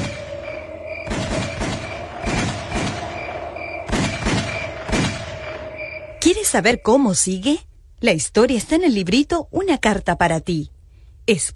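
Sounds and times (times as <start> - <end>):
sharp loud gunshots: 0.0 - 6.2
steady low hum: 0.0 - 11.3
speech: 6.6 - 11.5.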